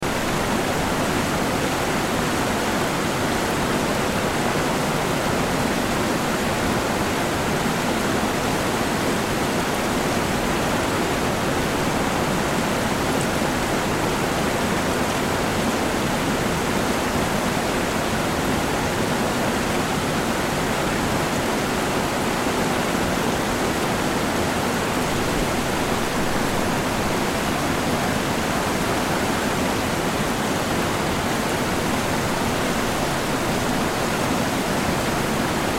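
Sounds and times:
water flowing over a dam: 0.0s - 35.7s.

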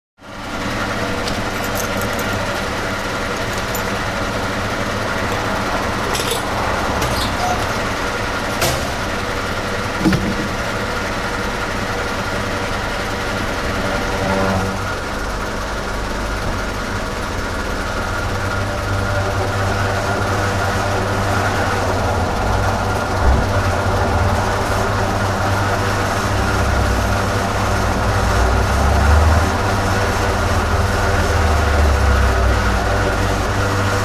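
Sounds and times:
petrol pump fuelling a car at a petrol filling station: 0.2s - 34.0s.

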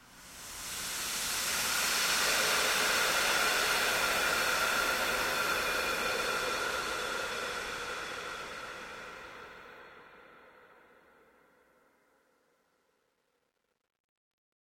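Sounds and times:
long airy toxin steam release: 0.0s - 10.4s.

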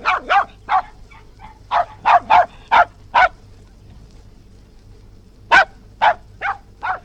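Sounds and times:
West Highland white terrier barking outdoors: 0.0s - 3.4s, 5.5s - 7.0s.

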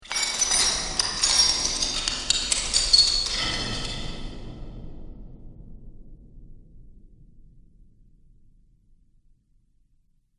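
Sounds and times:
dungeon chains clinking, clattering and clanging: 0.0s - 4.4s.

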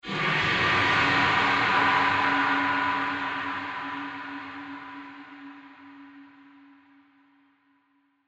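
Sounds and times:
dark swirling horror drone: 0.0s - 6.8s.

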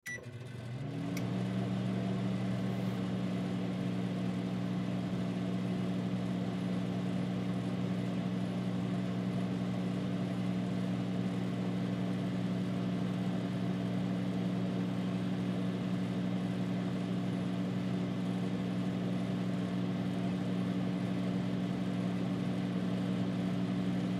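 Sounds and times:
household microwave beep: 0.0s - 1.6s
household microwave running: 0.1s - 24.1s.

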